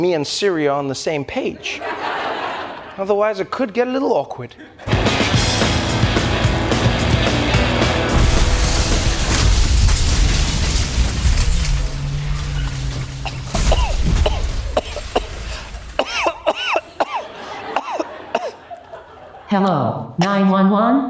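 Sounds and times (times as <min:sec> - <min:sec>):
speech: 0:00.0 - 0:02.1, 0:03.0 - 0:05.1, 0:19.5 - 0:21.0
laughter: 0:01.4 - 0:03.4, 0:04.4 - 0:05.4, 0:16.2 - 0:19.8
loud sustained car crash grinding: 0:05.0 - 0:16.5
clanks, thuds and tinkling debris settling: 0:08.2 - 0:16.3.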